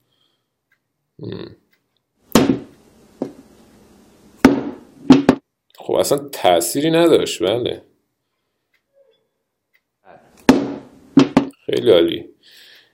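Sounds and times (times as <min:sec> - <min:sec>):
speech: 0:01.2 - 0:01.6, 0:05.9 - 0:07.9, 0:11.7 - 0:12.6
hammer dropped onto a smartphone in a durability test: 0:04.4 - 0:05.4, 0:10.5 - 0:11.5.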